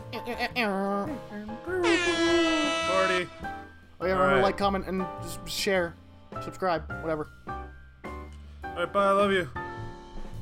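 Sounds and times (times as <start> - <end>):
speech: 0.1 - 7.6, 8.8 - 9.6
voice imitating an air horn: 1.8 - 3.5.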